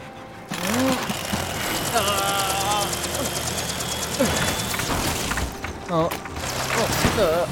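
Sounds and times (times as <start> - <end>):
engine of a self-built helicopter running: 0.4 - 7.4
person exclaiming: 1.8 - 3.3.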